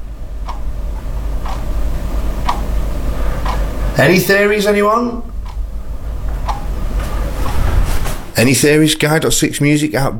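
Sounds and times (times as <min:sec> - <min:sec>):
deco-style wall clock ticking: 0:00.0 - 0:07.6
low constant hum: 0:00.0 - 0:10.1
speech: 0:04.0 - 0:05.3, 0:08.4 - 0:10.1.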